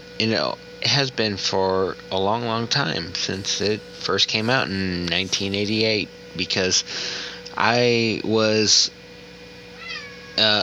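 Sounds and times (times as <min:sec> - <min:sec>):
speech: 0:00.2 - 0:09.0, 0:10.4 - 0:10.6
cat meowing: 0:09.7 - 0:10.6.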